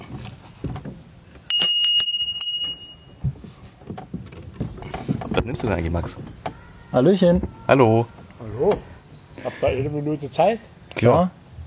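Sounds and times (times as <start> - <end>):
shuffling: 0.0 - 10.6
small bell ringing with bright metallic strikes: 1.5 - 3.2
low murmur: 3.2 - 11.6
speech: 5.5 - 8.9, 9.6 - 11.4.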